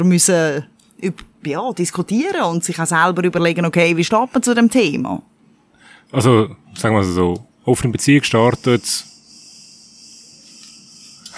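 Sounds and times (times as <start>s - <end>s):
speech: 0.0s - 5.3s, 6.1s - 9.1s
cicadas buzzing: 8.3s - 11.3s.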